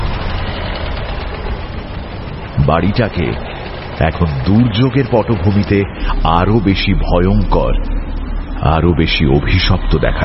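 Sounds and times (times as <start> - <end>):
car engine running beside a rusty iron gate: 0.0 - 10.2
speech: 2.6 - 8.0, 8.6 - 10.2.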